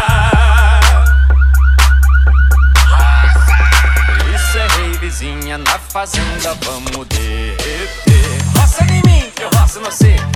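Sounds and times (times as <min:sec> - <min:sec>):
heavy booming bass: 0:00.0 - 0:10.3
pickup truck alarms wailing and warbling: 0:00.4 - 0:05.9
speech: 0:06.0 - 0:10.3.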